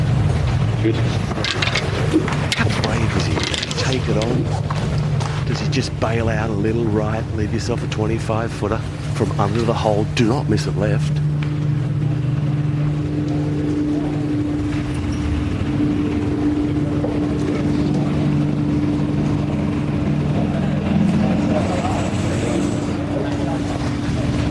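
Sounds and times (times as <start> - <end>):
golf buggy small engine revving at a golf tournament: 0.0 - 24.4
speech: 0.8 - 11.2.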